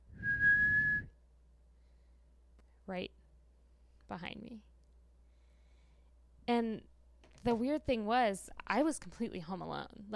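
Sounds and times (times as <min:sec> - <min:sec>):
person whistling one steady note imitating a human whistle: 0:00.1 - 0:01.2
speech: 0:02.9 - 0:03.2, 0:04.1 - 0:04.7, 0:06.5 - 0:10.1.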